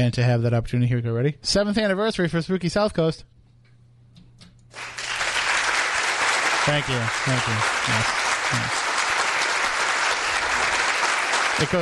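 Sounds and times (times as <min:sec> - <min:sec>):
speech: 0:00.0 - 0:03.3, 0:06.6 - 0:08.9, 0:11.6 - 0:11.7
crowd applauding: 0:04.7 - 0:11.7.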